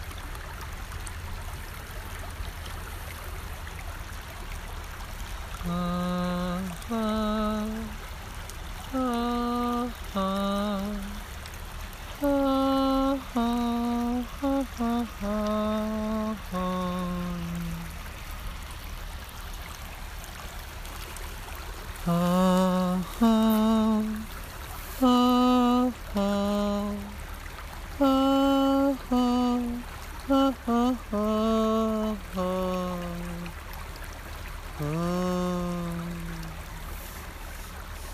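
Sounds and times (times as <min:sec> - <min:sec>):
flowing river water: 0:00.0 - 0:38.1
person singing wordless sustained notes: 0:05.6 - 0:08.0, 0:08.9 - 0:11.2, 0:12.2 - 0:18.0, 0:22.0 - 0:24.3, 0:24.9 - 0:27.2, 0:28.0 - 0:33.6, 0:34.8 - 0:36.8.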